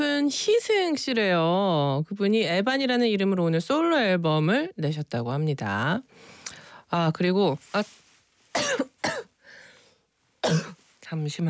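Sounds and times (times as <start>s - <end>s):
speech: 0.3s - 8.0s, 10.4s - 11.4s
soft breathy sound: 6.1s - 6.9s, 9.4s - 10.2s
person coughing: 8.6s - 9.3s, 10.4s - 10.8s.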